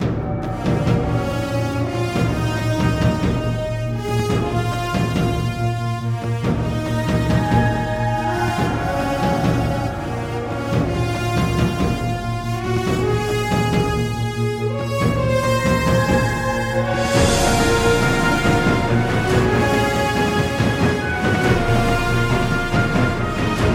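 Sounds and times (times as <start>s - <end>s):
battle music: 0.0s - 23.7s.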